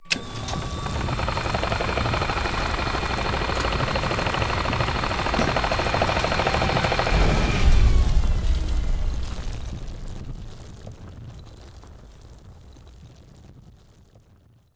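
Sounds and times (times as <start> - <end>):
ship drill: 0.0 - 9.6.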